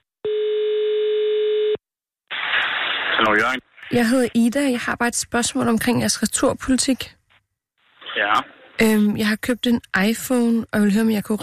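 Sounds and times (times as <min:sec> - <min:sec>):
telephone ringing tone on a call to a shop: 0:00.2 - 0:01.8
speech: 0:03.3 - 0:07.2, 0:08.2 - 0:11.4.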